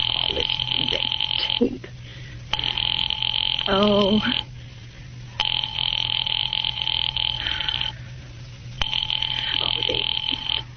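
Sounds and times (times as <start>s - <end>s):
telephone bell ringing with electric trill: 0.0s - 1.7s, 2.5s - 4.5s, 5.4s - 8.0s, 8.8s - 10.7s
low hum: 0.0s - 10.7s
speech: 3.7s - 4.5s.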